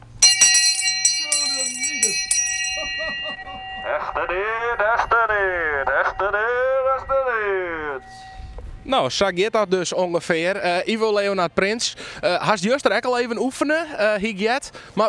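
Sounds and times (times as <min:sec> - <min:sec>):
bicycle bell ringing: 0:00.0 - 0:08.9
speech: 0:08.9 - 0:15.0.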